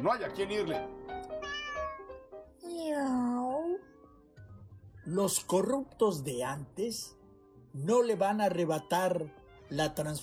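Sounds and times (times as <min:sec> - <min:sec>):
speech: 0:00.0 - 0:01.0, 0:02.7 - 0:03.9, 0:05.0 - 0:10.2
cat meowing: 0:01.3 - 0:04.0.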